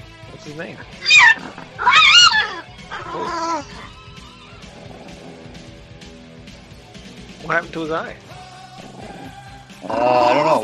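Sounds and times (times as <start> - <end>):
speech: 0.4 - 4.0, 7.4 - 8.3, 9.8 - 10.6
dog whining: 1.0 - 5.6, 8.9 - 10.6.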